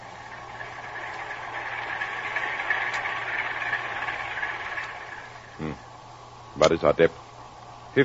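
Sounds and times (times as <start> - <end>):
ship's heavy engines droning: 0.0 - 6.0
two ship propellers churning through the water: 0.3 - 5.5
speech: 6.6 - 7.2.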